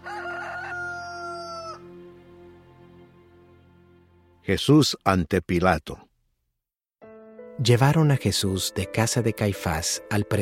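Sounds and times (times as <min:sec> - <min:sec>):
rooster crowing: 0:00.0 - 0:02.0
speech: 0:04.5 - 0:06.1, 0:07.6 - 0:10.4.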